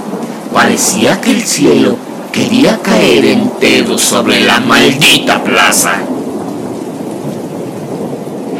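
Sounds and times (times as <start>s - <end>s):
deep low rumble of thunder: 0.0s - 8.5s
heavy downpour: 0.0s - 8.5s
speech: 0.6s - 6.2s.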